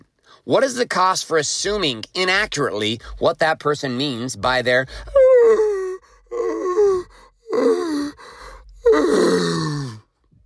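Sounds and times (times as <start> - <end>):
speech: 0.4 - 5.7, 7.6 - 7.8
big yawn: 4.9 - 10.1.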